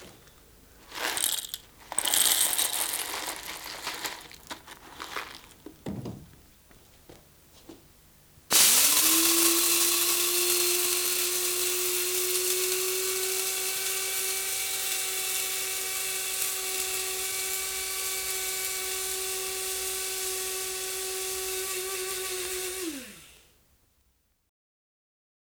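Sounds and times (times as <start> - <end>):
electric coffee grinder: 0.9 - 5.6, 8.5 - 23.5.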